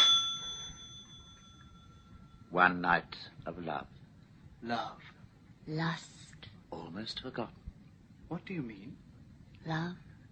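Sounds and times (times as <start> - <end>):
bell ringing: 0.0 - 2.6
speech: 2.6 - 4.0, 4.6 - 7.6, 8.3 - 9.0, 9.6 - 10.1.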